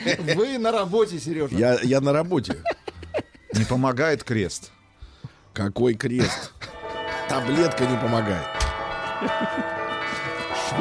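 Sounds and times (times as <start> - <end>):
laughter: 0.0 - 0.6, 2.3 - 3.8, 9.0 - 10.6
speech: 0.1 - 2.8, 3.6 - 4.8, 5.6 - 6.6, 7.3 - 8.6, 9.2 - 9.8
church bells ringing: 6.6 - 10.7.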